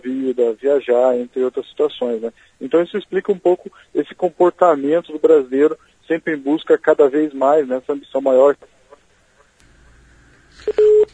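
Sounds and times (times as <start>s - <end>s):
faint hiss: 0.0s - 11.1s
speech: 0.3s - 8.8s, 10.6s - 11.1s
short telephone beep: 10.6s - 11.1s
telephone line tone after a dropped call: 10.6s - 11.1s.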